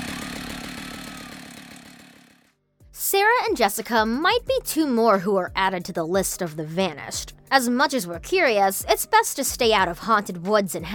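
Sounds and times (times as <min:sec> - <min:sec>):
chainsaw pull-started and roaring: 0:00.0 - 0:02.5
speech: 0:03.0 - 0:10.9.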